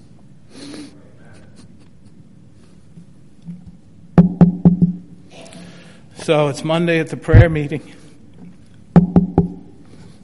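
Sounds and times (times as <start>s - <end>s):
speech: 6.3s - 8.0s
knocks on a wooden door: 9.0s - 9.6s.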